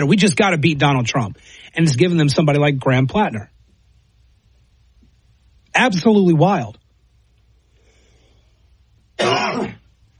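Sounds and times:
speech: 0.0s - 3.5s, 5.8s - 6.8s
person coughing harshly: 9.2s - 9.8s.

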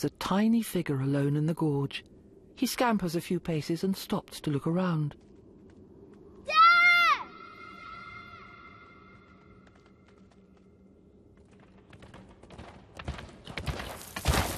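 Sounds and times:
speech: 0.0s - 5.2s
hoofbeats of a lone wildebeest galloping through a gorge: 11.3s - 14.5s.

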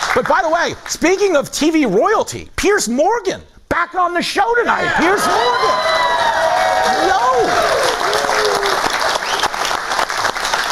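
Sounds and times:
speech: 0.2s - 6.1s, 6.9s - 7.9s
studio audience applause: 5.2s - 10.7s.

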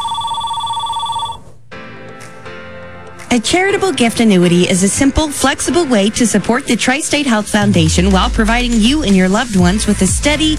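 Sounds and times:
telephone ringing with a bright electronic trill: 0.0s - 1.6s
speech: 3.3s - 10.5s.

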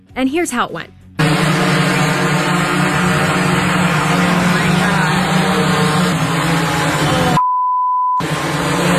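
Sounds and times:
speech: 0.2s - 1.0s
droning engine-like hum of drone delivery: 1.2s - 7.4s, 8.2s - 8.9s
censor bleep tone: 7.4s - 8.2s.

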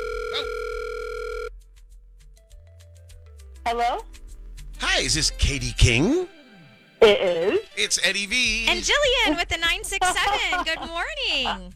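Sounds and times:
telephone dial tone: 0.0s - 1.5s
speech: 3.7s - 4.2s, 5.0s - 6.4s, 7.0s - 11.7s
laughter: 4.8s - 11.7s.

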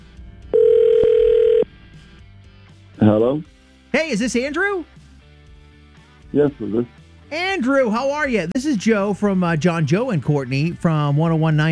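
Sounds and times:
ringback tone from an outgoing phone call: 0.5s - 1.7s
speech: 3.0s - 5.0s, 6.3s - 11.7s.

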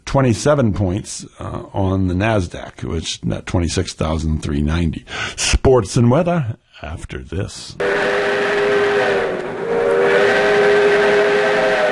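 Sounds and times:
speech: 0.1s - 8.3s
steam train whistle blowing a chord-like wail: 7.8s - 11.8s.

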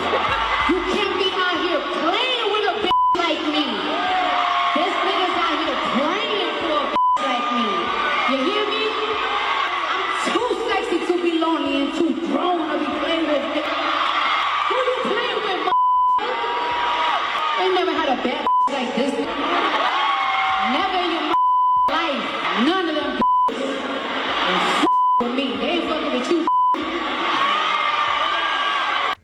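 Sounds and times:
laughter: 0.0s - 11.1s, 13.1s - 21.4s, 22.0s - 29.2s
loud rap track with rhythmic vocals: 0.0s - 29.2s
short steady censor bleeps over explicit song lyrics: 2.8s - 3.5s, 6.9s - 7.4s, 15.7s - 16.2s, 18.4s - 18.7s, 21.3s - 22.0s, 23.1s - 23.6s, 24.8s - 25.6s, 26.3s - 27.0s.

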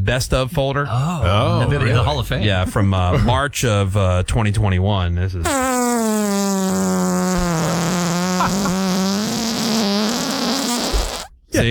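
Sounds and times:
speech: 0.1s - 5.8s
recorded long drawn-out buzzy fart: 5.4s - 11.4s.

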